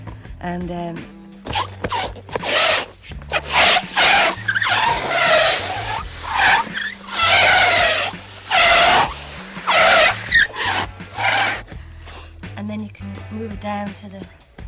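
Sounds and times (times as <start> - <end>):
speech: 0.4 - 2.4, 13.5 - 14.4
rubber hot water bottle squeaking across wet kitchen-type tiles: 1.5 - 11.7.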